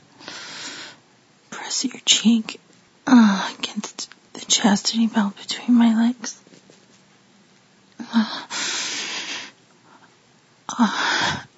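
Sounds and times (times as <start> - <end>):
speech: 1.8 - 6.5, 10.8 - 11.0
person inhaling with sniffing breaths: 8.4 - 9.6.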